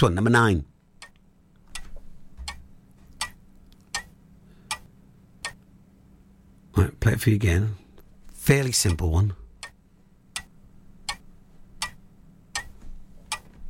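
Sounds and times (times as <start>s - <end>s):
speech: 0.0s - 0.7s, 6.8s - 7.8s, 8.5s - 9.4s
clock ticking: 0.0s - 5.7s, 8.4s - 13.6s
low hum: 0.0s - 13.6s.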